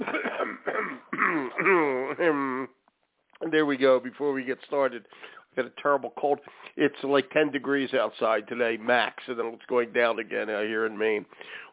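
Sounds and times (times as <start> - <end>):
person clearing throat: 0.0 - 2.8
person humming and grunting: 1.1 - 2.7
speech: 1.6 - 2.5, 3.5 - 11.7.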